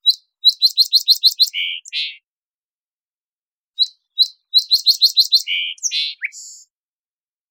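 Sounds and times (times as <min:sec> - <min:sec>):
song sparrow singing in the Pacific Northwest, Washington, United States: 0:00.0 - 0:02.3, 0:03.8 - 0:06.8.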